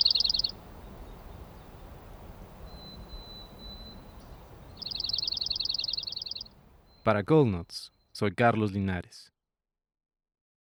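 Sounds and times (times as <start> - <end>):
thin steady whistle: 0.0 - 1.2, 2.6 - 6.5
Dark-eyed junco song trilling: 0.0 - 7.0
speech: 7.1 - 9.3.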